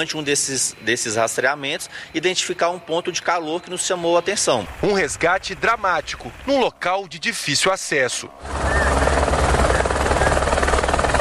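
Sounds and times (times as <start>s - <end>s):
speech: 0.0s - 8.7s
firefighters' helicopter rotor during a rescue in Belo Horizonte, Brazil: 4.7s - 11.1s.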